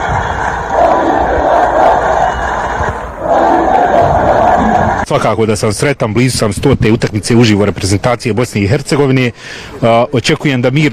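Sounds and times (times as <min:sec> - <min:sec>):
football fans cheering and chanting in a stadium: 0:00.0 - 0:05.1
speech: 0:05.1 - 0:10.9.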